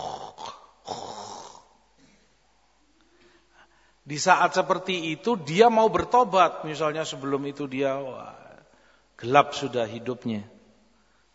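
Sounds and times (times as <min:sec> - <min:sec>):
voice imitating the gurgling death rattle of a dying person: 0:00.0 - 0:01.7
speech: 0:04.1 - 0:08.4, 0:09.2 - 0:10.6.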